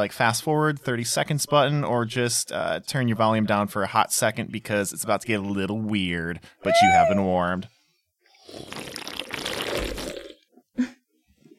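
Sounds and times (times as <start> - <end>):
speech: 0.0 - 7.8
loud wet slurping: 8.4 - 10.4.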